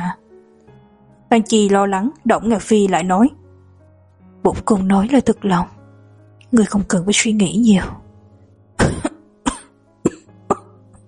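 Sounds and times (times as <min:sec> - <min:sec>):
speech: 0:01.3 - 0:03.4, 0:04.4 - 0:05.8, 0:06.5 - 0:08.0
soft coughs: 0:08.8 - 0:10.8.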